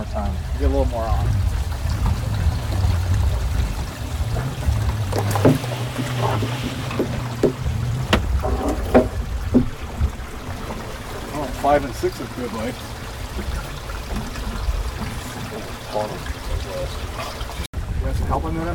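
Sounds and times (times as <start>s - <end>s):
water gushing and splashing out of a boat: 0.0s - 18.1s
low rumbling drone: 0.0s - 18.2s
speech: 0.7s - 1.5s, 11.7s - 13.7s, 16.0s - 17.6s, 18.3s - 18.7s
sharp knocks: 4.2s - 10.8s.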